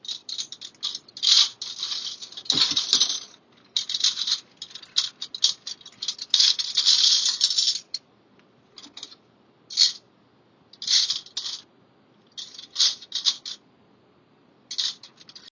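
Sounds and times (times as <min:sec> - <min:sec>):
forks rattling in a drawer: 0:00.0 - 0:08.0, 0:10.8 - 0:11.6, 0:12.4 - 0:13.6, 0:14.7 - 0:15.4.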